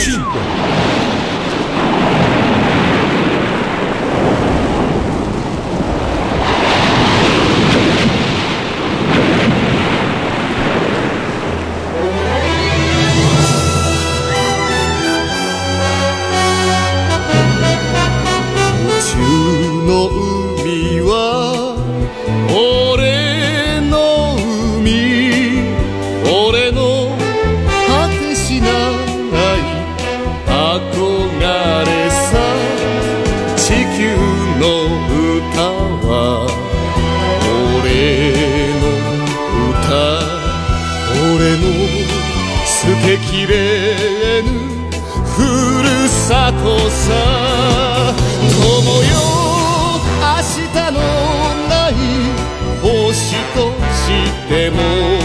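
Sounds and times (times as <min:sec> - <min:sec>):
Japanese anime opening theme song with full band: 0:00.0 - 0:00.8, 0:12.0 - 0:55.2
ocean surf roaring: 0:00.0 - 0:20.1, 0:28.6 - 0:42.8, 0:46.7 - 0:53.7.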